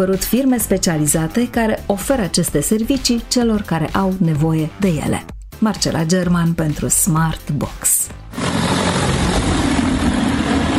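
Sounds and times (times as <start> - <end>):
speech: 0.0 - 8.1
agricultural spraying drone propellers buzzing: 8.3 - 10.7.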